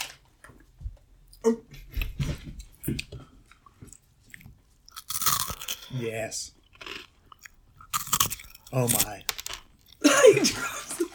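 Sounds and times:
speech: 1.4 - 1.8, 2.9 - 3.1, 6.0 - 6.6, 8.7 - 9.4
crunchy chewing of chips: 3.5 - 10.0
laughter: 10.0 - 11.1.

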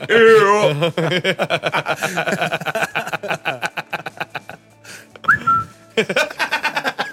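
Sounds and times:
speech: 0.0 - 3.5
people chuckling and laughing: 0.0 - 7.1
slide whistle glide: 5.3 - 5.8.

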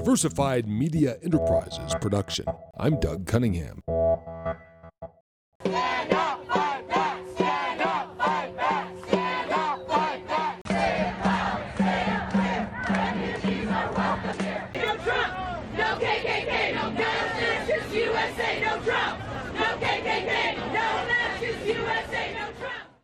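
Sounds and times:
speech: 0.0 - 4.7
large crowd chanting a slogan at a protest rally: 5.6 - 23.0.

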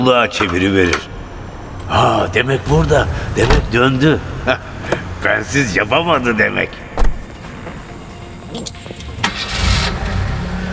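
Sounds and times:
speech: 0.0 - 1.2, 1.9 - 6.8
old car engine cranking, starting and idling in Istanbul: 0.3 - 10.7
car keys jingling in the ignition of an old car: 7.7 - 9.7.

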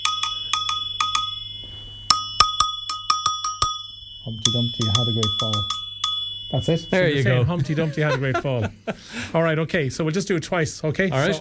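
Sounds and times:
agogo bell clanks: 0.0 - 7.0
speech: 4.3 - 5.8, 6.5 - 11.3
laughter: 7.2 - 9.4.

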